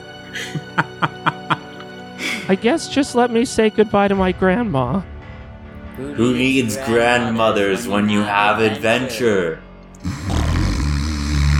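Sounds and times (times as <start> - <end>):
laughter: 0.3 - 2.4
speech: 2.5 - 5.1, 6.0 - 9.6
grandmother snoring: 10.0 - 11.5.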